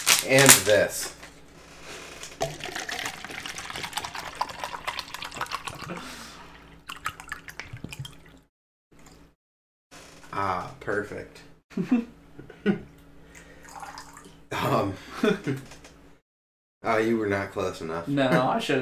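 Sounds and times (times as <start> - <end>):
crinkly plastic handling noises: 0.0 - 0.9
speech: 0.2 - 1.2, 10.9 - 12.8, 14.6 - 15.8, 16.8 - 18.8
water sloshing in a plastic bottle: 2.4 - 8.4.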